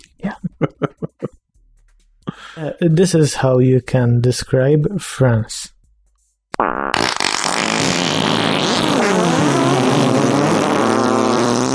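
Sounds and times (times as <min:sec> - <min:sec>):
laughter: 0:00.4 - 0:01.4
speech: 0:02.6 - 0:05.8
loud dense chorus of overlapping farts: 0:06.6 - 0:11.7.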